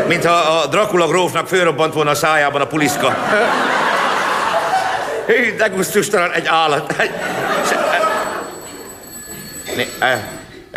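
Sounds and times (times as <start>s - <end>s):
speech: 0.1s - 4.0s, 5.3s - 7.9s, 9.8s - 10.4s
laughter: 2.8s - 5.9s, 6.5s - 10.7s
telephone bell ringing: 7.2s - 10.6s.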